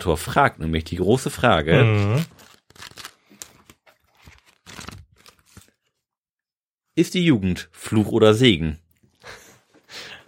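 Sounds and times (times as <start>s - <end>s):
speech: 0.0s - 2.9s, 7.0s - 9.4s
pages of two paper flip blocks flipping: 1.8s - 6.1s.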